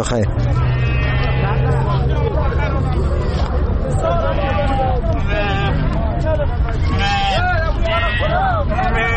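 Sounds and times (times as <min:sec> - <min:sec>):
chatter and hubbub from many people at a livestock market: 0:00.0 - 0:09.1
sheep bleating at a livestock market: 0:00.5 - 0:01.7, 0:04.0 - 0:05.9, 0:06.8 - 0:09.1
laughter: 0:00.5 - 0:09.1.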